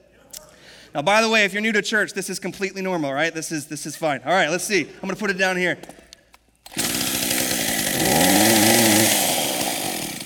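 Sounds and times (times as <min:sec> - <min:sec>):
speech: 0:00.9 - 0:06.0
chainsaw engine starting and running: 0:06.7 - 0:10.2.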